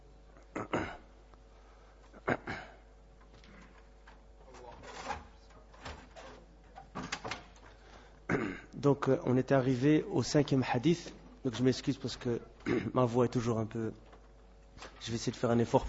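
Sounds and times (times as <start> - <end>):
quiet room hum: 0.0 - 15.8
door being closed during a hadith lesson: 4.5 - 7.6
speech: 8.8 - 14.0, 14.8 - 15.8.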